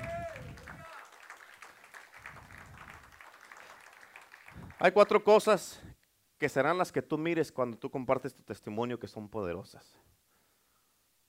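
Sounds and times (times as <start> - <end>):
crowd calling out and cheering: 0.0 - 5.0
audience applauding: 0.0 - 5.2
speech: 4.8 - 10.2.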